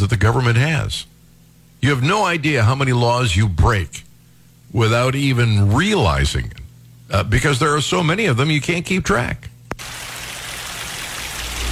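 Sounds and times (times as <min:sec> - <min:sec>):
speech: 0:00.0 - 0:01.1, 0:01.8 - 0:04.1, 0:04.7 - 0:10.0
rain falling: 0:09.7 - 0:11.7
low rumble: 0:11.4 - 0:11.7.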